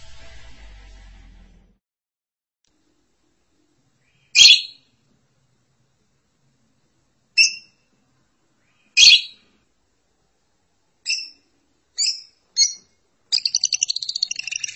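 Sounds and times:
lovebird chirping: 4.1 - 4.8, 8.7 - 9.4, 11.0 - 11.4, 12.0 - 14.7.

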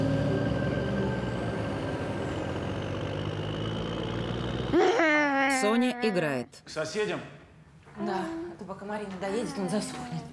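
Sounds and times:
car engine running as the car pulls away once a barrier opens: 0.0 - 5.0
speech: 5.6 - 7.4, 8.0 - 10.3.

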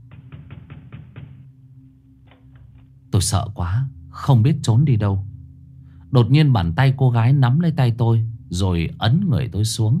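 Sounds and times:
urgent loud pounding on a door at night: 0.0 - 1.6
steady low hum: 0.0 - 9.9
speech: 3.2 - 5.3, 6.1 - 9.9.

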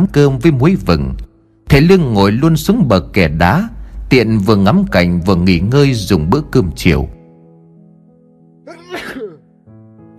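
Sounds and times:
speech: 0.0 - 7.2
faint steady background: 0.0 - 10.1
man sneezing on a stone embankment by the water: 8.7 - 9.5.

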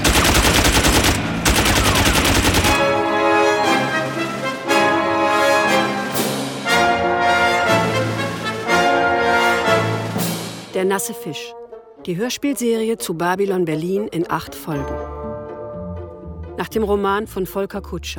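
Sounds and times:
machine-gun fire aimed at police officers: 0.0 - 3.0
music: 0.0 - 18.1
speech: 10.8 - 15.1, 16.6 - 18.1.

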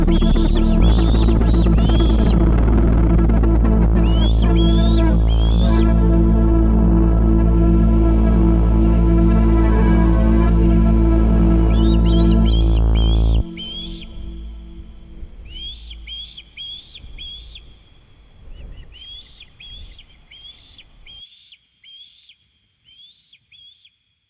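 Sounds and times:
young osprey begging calls in the nest: 0.0 - 7.2, 11.7 - 21.2
loud low rumble: 0.0 - 21.2.

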